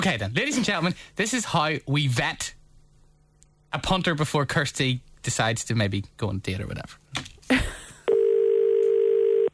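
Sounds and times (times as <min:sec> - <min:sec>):
speech: 0:00.0 - 0:02.6, 0:03.7 - 0:07.8
telephone ringing tone while a call is placed: 0:08.1 - 0:09.5.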